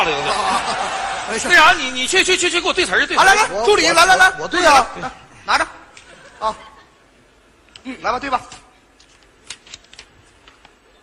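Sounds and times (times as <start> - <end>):
laughter: 0.0 - 2.2, 6.0 - 7.0
speech: 0.1 - 5.8, 6.4 - 6.7, 7.8 - 8.6
paper script page turning: 7.7 - 11.0.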